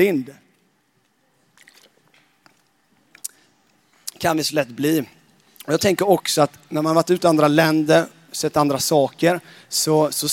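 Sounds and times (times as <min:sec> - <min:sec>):
speech: 0:00.0 - 0:00.4, 0:04.2 - 0:10.3
person sipping water: 0:01.4 - 0:04.2
soft wet gulps and mouth noises from swallowing water: 0:01.4 - 0:04.2.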